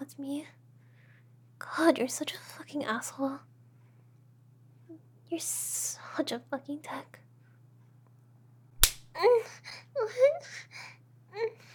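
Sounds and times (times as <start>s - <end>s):
speech: 0.1s - 0.6s, 1.6s - 3.5s, 5.3s - 7.2s, 9.2s - 11.7s
slap of a person: 8.8s - 9.1s.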